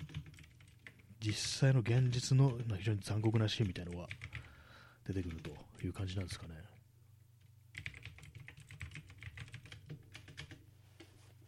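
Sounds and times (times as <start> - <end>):
computer keyboard typing of a web search: 0.0 - 4.5, 5.2 - 6.5, 7.7 - 11.4
low constant hum: 0.0 - 11.4
speech: 1.2 - 4.4, 5.1 - 6.8.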